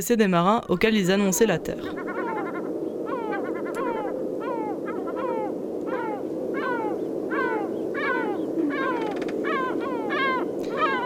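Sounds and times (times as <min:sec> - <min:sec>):
speech: 0:00.0 - 0:02.1
steady wash of noise like surf or wind: 0:00.2 - 0:11.0
black-headed gull cackle: 0:01.8 - 0:11.0.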